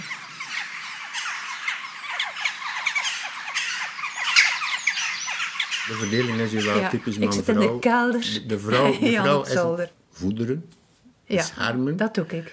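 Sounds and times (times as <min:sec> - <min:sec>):
flock of migrating birds honking and squawking: 0:00.0 - 0:07.3
speech: 0:05.9 - 0:12.5
laughter: 0:08.6 - 0:09.6.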